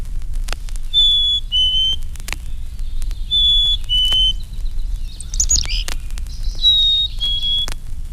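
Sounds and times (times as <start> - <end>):
Black-capped Chickadee whistling its two-note song: 0.9 - 2.0, 3.3 - 4.4, 6.6 - 7.8
bird chirps: 0.9 - 7.8.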